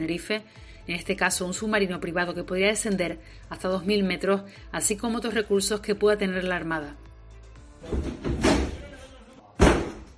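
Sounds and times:
speech: 0.0 - 7.1, 7.8 - 8.4
door slamming: 7.8 - 8.9, 9.6 - 10.1
apartment door crashing open: 7.9 - 8.8.

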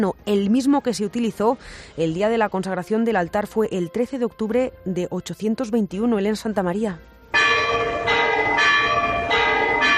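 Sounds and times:
speech: 0.0 - 7.4
large ancient cathedral church bell ringing: 7.3 - 9.9.

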